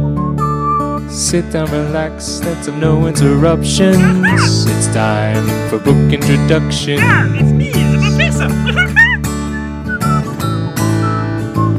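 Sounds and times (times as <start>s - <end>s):
speech: 1.1s - 9.0s
laughter: 4.0s - 4.7s, 7.0s - 9.8s
person whistling a quick wavering melody: 9.5s - 11.7s.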